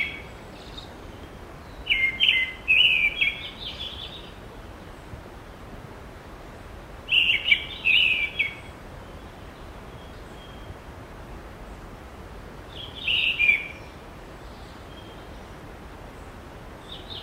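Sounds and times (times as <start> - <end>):
bird twittering and warbling: 0.0 - 5.2, 7.0 - 10.8, 12.7 - 15.5
constant rushing background noise: 0.0 - 17.2.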